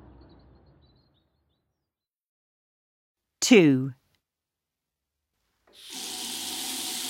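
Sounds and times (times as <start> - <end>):
speech: 3.4 - 4.0
water gushing from a tap into a sink: 5.8 - 7.0.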